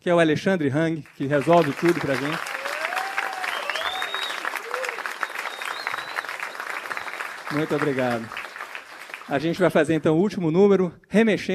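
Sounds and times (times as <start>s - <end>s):
speech: 0.0s - 2.5s, 7.5s - 8.4s, 9.3s - 11.5s
audience applause: 1.2s - 9.9s
sharp whistles: 2.6s - 7.6s.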